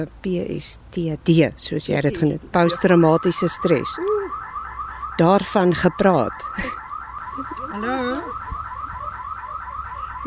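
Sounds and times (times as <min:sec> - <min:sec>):
speech: 0:00.0 - 0:04.1, 0:05.2 - 0:06.8, 0:07.4 - 0:08.4
electronic alarm wailing with pitch sweeping up and down: 0:02.6 - 0:10.2.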